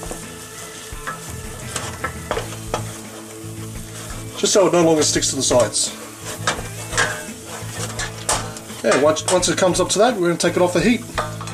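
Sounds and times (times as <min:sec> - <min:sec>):
soft sizzle in a pan: 0:00.0 - 0:11.5
spoon stirring flour and boiling water into thick dough in a pan: 0:01.0 - 0:09.8
speech: 0:04.4 - 0:06.0, 0:08.8 - 0:11.2.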